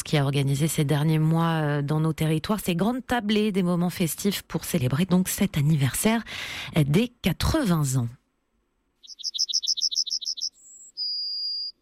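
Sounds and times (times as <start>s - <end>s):
speech: 0.1s - 8.2s
yellowhammer song: 9.0s - 11.8s.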